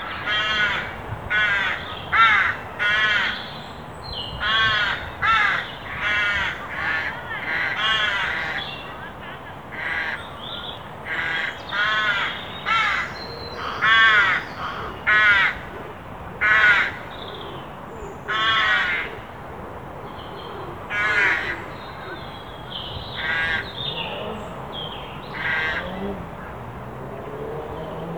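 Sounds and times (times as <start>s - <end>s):
Carrion crow Corvus corone cawing: 0.1s - 3.4s, 4.4s - 8.6s, 9.8s - 10.2s, 11.1s - 15.6s, 16.4s - 17.0s, 18.3s - 19.1s, 20.9s - 21.7s, 23.1s - 23.8s, 25.3s - 26.0s.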